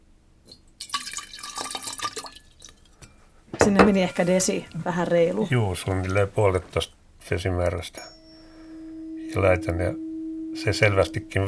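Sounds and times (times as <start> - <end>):
small drip of water: 0.4 - 3.1
water poured into a glass carafe: 0.8 - 3.0
speech: 3.7 - 8.2, 9.3 - 10.0, 10.6 - 11.4.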